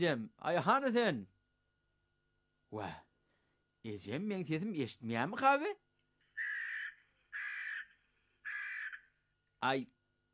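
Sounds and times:
speech: 0.0 - 1.3, 2.7 - 3.1, 3.8 - 5.8, 9.6 - 10.0
crow cawing: 6.3 - 9.2.

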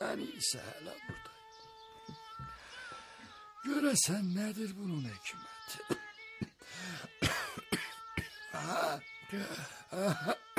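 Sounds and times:
speech: 0.2 - 1.4, 3.6 - 6.0, 8.6 - 10.4
harsh raspy coughing: 7.2 - 8.9, 9.9 - 10.5.

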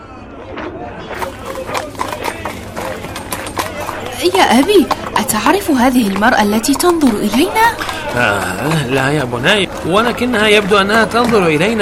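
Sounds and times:
low murmur of noise: 0.0 - 11.8
donkey hooves clip-clopping while walking: 1.1 - 11.8
speech: 4.2 - 11.8.

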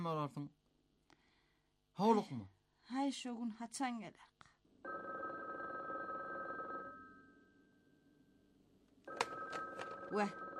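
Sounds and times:
speech: 0.0 - 0.6, 2.0 - 5.1, 10.1 - 10.4
telephone ringing with a high electronic ring: 4.8 - 7.7, 9.1 - 10.5.

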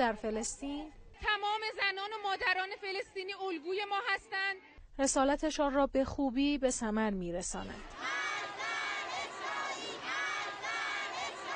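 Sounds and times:
speech: 0.0 - 8.0
large crowd shouting pro-Palestinian protest chants in unison: 7.8 - 11.5.

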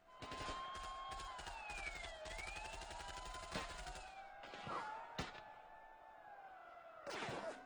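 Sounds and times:
wailing siren rising and falling: 0.0 - 7.6
rapid bursts of gunfire in a street: 0.2 - 4.1.

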